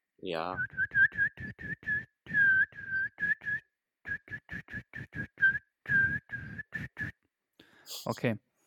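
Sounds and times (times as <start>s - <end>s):
speech: 0.2s - 0.8s, 8.0s - 8.5s
person attempting to whistle in breathy wavering notes: 0.5s - 7.3s.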